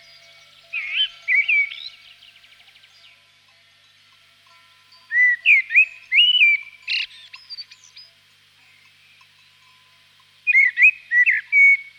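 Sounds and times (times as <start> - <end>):
common blackbird singing rich whistled phrases: 0.0 - 3.2, 5.1 - 8.2, 10.5 - 11.9.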